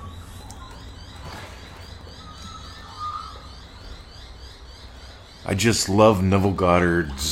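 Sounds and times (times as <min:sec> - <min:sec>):
faint birdsong outdoors: 0:00.0 - 0:07.2
speech: 0:05.5 - 0:07.2.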